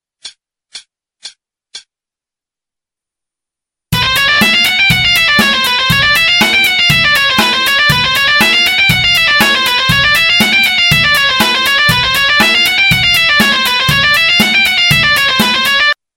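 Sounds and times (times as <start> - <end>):
chromatic scale played: 4.0 - 16.0.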